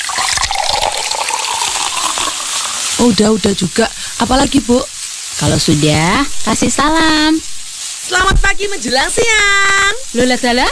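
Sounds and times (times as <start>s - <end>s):
coconut milk pouring into hot oil with ground spice paste: 0.0s - 3.0s
speech: 3.0s - 7.5s, 8.1s - 10.7s.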